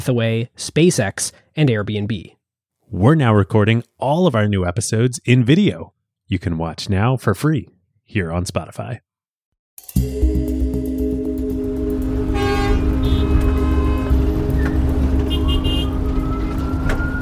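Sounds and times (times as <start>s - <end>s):
speech: 0.0s - 9.1s, 9.9s - 10.3s
steady low engine rumble of Manhattan street traffic heard from a cab: 10.8s - 17.1s
car horns honking in Manhattan street traffic: 12.2s - 17.1s.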